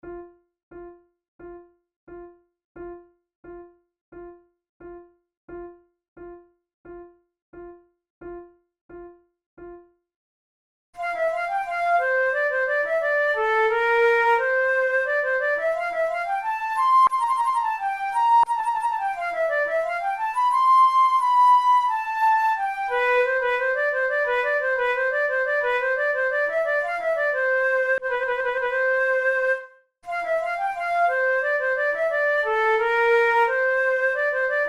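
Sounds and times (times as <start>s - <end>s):
flute playing a sonata allemande: 11.0s - 34.6s.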